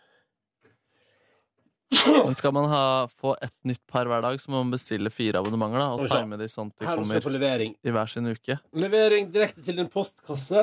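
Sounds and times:
sneeze: 1.9 - 2.4
speech: 2.0 - 10.6.

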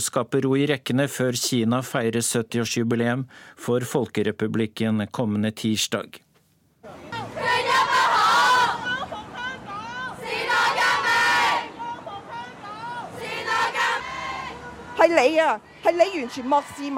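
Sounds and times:
speech: 0.1 - 6.2, 15.0 - 16.9
large crowd of young voices chanting a protest slogan in Hong Kong: 7.1 - 16.9.

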